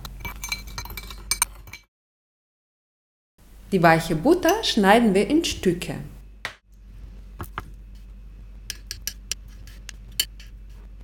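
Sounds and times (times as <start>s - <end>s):
utensil clinking against a dish mixing sugar and cocoa for a biscuit dessert: 0.0s - 1.9s
speech: 3.7s - 6.1s.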